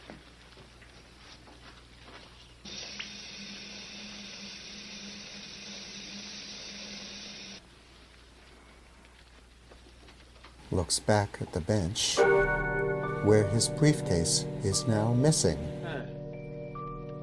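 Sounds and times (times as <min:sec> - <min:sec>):
water running from a drinking fountain in a hissing stream: 0:02.7 - 0:07.6
speech: 0:10.8 - 0:15.7.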